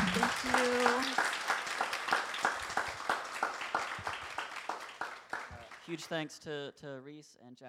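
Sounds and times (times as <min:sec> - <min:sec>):
audience applauding at a bookstore author reading: 0:00.0 - 0:06.1
speech: 0:00.2 - 0:01.4, 0:05.9 - 0:07.6.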